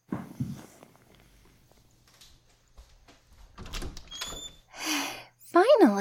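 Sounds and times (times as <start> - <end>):
metallic clicks and rattles of a door lock being worked: 3.5 - 4.6
door squeaking as it swings open: 3.6 - 4.7.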